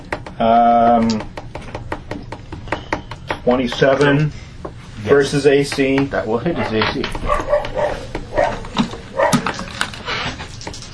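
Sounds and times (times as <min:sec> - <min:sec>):
speech: 0:00.4 - 0:01.3, 0:03.4 - 0:04.4, 0:05.0 - 0:07.8
puppy giving short high-pitched yips and barks: 0:07.3 - 0:08.6.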